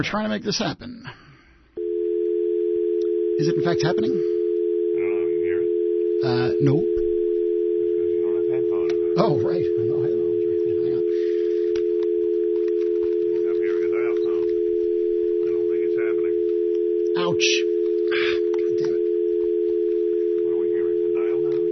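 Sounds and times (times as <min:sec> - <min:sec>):
speech: 0:00.0 - 0:01.2, 0:03.4 - 0:04.3, 0:06.2 - 0:06.9, 0:09.2 - 0:10.0, 0:17.2 - 0:17.7
telephone dial tone: 0:01.8 - 0:21.7
clicks and rustles: 0:11.7 - 0:14.6.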